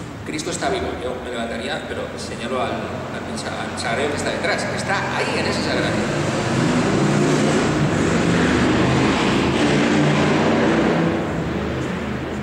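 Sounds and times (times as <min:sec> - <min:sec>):
speech: 0:00.3 - 0:06.7
motorcycle engine roaring while passing by outside: 0:04.0 - 0:12.4.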